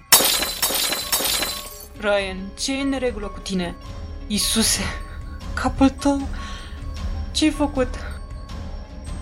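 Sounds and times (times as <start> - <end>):
glass shards tinkling: 0.0 - 1.9
glass shattering: 0.0 - 1.9
speech: 2.0 - 5.0, 5.6 - 6.5, 7.4 - 8.1.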